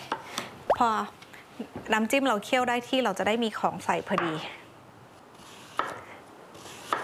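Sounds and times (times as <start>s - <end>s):
speech: 0.8s - 4.6s
knife slicing carrot and daikon radish into strips on a cutting board: 5.5s - 6.0s, 6.6s - 7.0s.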